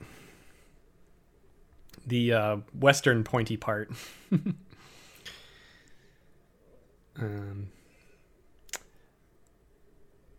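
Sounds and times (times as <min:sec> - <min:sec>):
faint breaths: 0:00.0 - 0:01.0, 0:04.0 - 0:09.2
speech: 0:02.1 - 0:04.9, 0:07.2 - 0:07.8
voiced yawn: 0:07.2 - 0:07.8
small clicks: 0:08.6 - 0:09.6.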